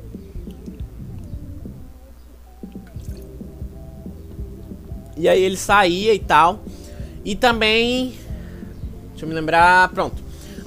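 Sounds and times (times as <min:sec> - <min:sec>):
person drinking water in soft rhythmic gulps and swallows: 0:02.9 - 0:03.3
speech: 0:05.2 - 0:08.2, 0:09.2 - 0:10.6.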